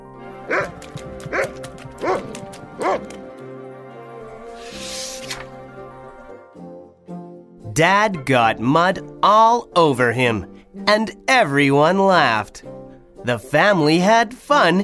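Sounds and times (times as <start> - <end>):
dog barking: 0.5 - 3.2
speech: 7.8 - 14.8.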